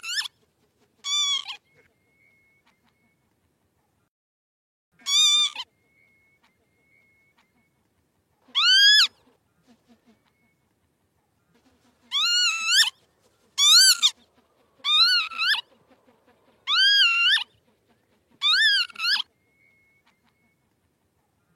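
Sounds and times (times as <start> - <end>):
northern lapwing calls: 1.0 - 3.2, 5.0 - 7.8, 8.4 - 10.7, 11.6 - 20.8.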